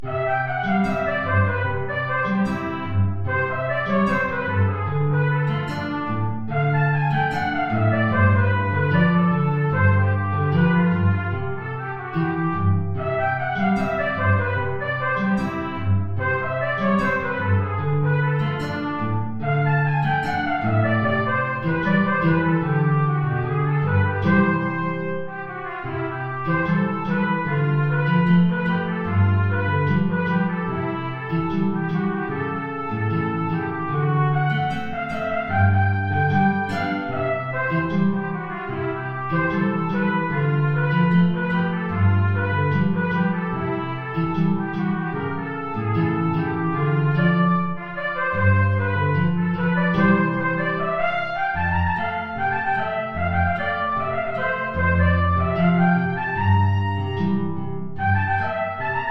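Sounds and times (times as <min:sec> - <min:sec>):
B-flat trumpet: 0:00.0 - 0:59.0
guitar: 0:00.0 - 0:59.0.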